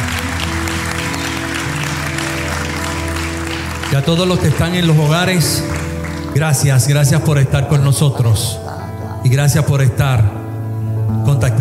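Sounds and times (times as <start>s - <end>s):
audience applause: 0.0s - 7.3s
speech: 3.9s - 10.4s, 11.1s - 11.5s.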